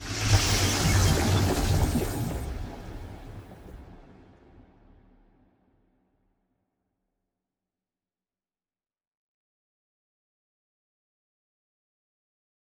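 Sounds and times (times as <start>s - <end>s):
science ship moving: 0.1s - 3.8s.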